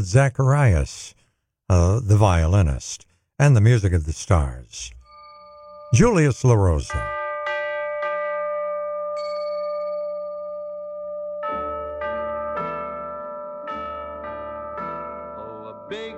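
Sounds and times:
speech: 0.0 - 5.0, 5.9 - 7.2
orchestral music with little and big ringing bells: 5.0 - 16.1.

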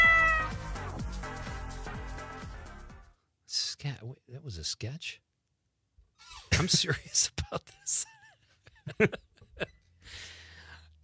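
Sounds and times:
cat meowing and yowling: 0.0 - 0.6
speech: 3.8 - 5.3, 6.6 - 8.2, 8.9 - 10.3.

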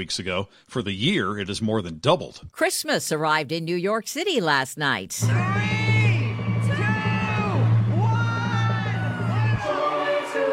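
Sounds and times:
speech: 0.0 - 5.9
large crowd cheering and whooping at a Christmas tree lighting in New York City: 5.2 - 10.5.

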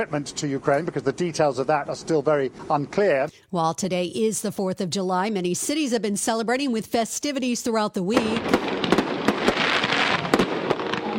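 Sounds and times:
speech: 0.0 - 9.0
fireworks bursting at an Independence Day event in Coachella, California: 6.9 - 11.1.

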